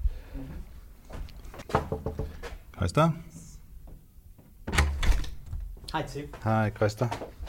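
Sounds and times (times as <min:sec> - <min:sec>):
sharp wooden knocks on an office door: 0:01.7 - 0:02.4
speech: 0:02.8 - 0:03.3, 0:06.0 - 0:07.4.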